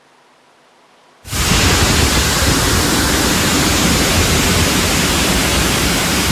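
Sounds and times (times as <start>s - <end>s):
floodwater rushing through streets: 1.3s - 6.3s.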